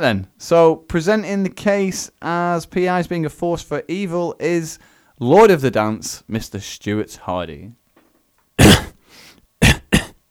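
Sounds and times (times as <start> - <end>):
speech: 0.0 - 7.8
person clearing throat: 8.6 - 9.0, 9.6 - 10.2.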